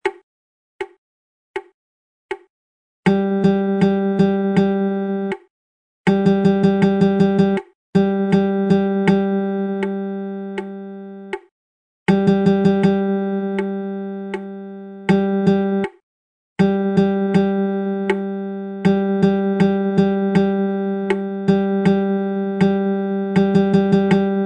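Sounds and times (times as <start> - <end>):
guitar strumming a rhythm chart: 3.1 - 5.4, 6.1 - 11.4, 12.1 - 16.0, 16.6 - 24.4.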